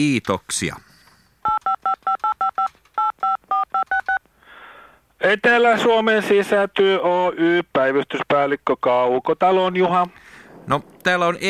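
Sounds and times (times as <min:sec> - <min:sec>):
speech: 0:00.0 - 0:00.9, 0:05.2 - 0:11.4
touch-tone telephone keypad beeps dialing a number: 0:01.4 - 0:04.2
faint telephone line hiss: 0:09.9 - 0:11.4.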